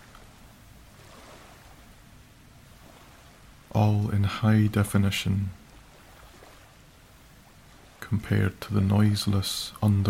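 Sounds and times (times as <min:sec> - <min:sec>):
small waves lapping: 0:00.0 - 0:03.8, 0:05.0 - 0:08.8
faint breezy hiss: 0:00.0 - 0:10.0
speech: 0:03.8 - 0:05.6, 0:08.1 - 0:10.0.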